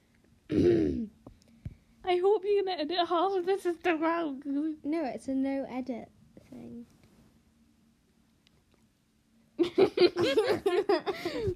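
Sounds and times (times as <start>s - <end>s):
speech: 0.5s - 1.1s, 2.1s - 7.0s, 9.8s - 11.5s
single short throaty cough: 0.5s - 1.2s
laughter: 9.6s - 11.5s.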